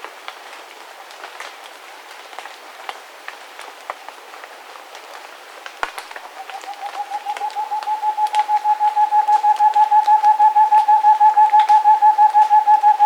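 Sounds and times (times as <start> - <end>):
Rufescent screech owl hooting in South America: 6.2 - 13.0.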